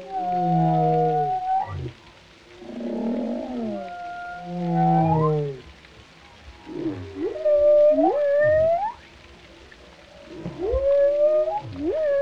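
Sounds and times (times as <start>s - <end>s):
whale song with long descending harmonic moans: 0.0s - 2.0s, 2.6s - 5.8s, 6.6s - 9.1s, 10.1s - 12.2s.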